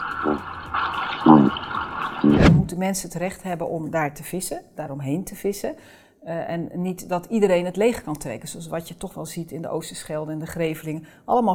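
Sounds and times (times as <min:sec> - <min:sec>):
Atlantic cod grunting underwater: 0:00.0 - 0:02.7
speech: 0:00.2 - 0:00.5, 0:02.2 - 0:11.5.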